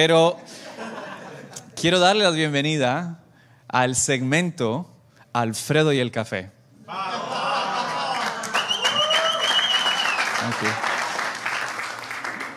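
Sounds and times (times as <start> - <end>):
speech: 0.0 - 0.6, 1.8 - 7.2, 10.4 - 10.9
laughter: 0.5 - 1.7, 6.8 - 9.1
studio audience applauding and cheering: 7.4 - 12.5
sharp whistle from the crowd: 8.6 - 10.4.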